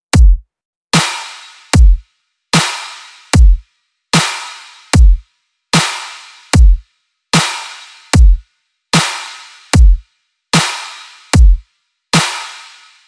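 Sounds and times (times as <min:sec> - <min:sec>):
kick drum: 0:00.0 - 0:00.5, 0:01.8 - 0:02.0, 0:03.4 - 0:03.6, 0:05.0 - 0:05.2, 0:06.6 - 0:06.8, 0:08.2 - 0:08.4, 0:09.8 - 0:10.0, 0:11.4 - 0:11.7
snare drum: 0:01.0 - 0:02.0, 0:02.6 - 0:03.6, 0:04.2 - 0:05.2, 0:05.8 - 0:06.8, 0:07.4 - 0:08.4, 0:09.0 - 0:10.0, 0:10.6 - 0:11.6, 0:12.2 - 0:13.0.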